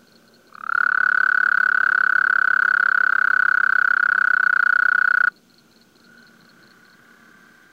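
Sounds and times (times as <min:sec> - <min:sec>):
Gulf Coast toad giving a low-pitched buzzy trill: 0:00.5 - 0:05.3.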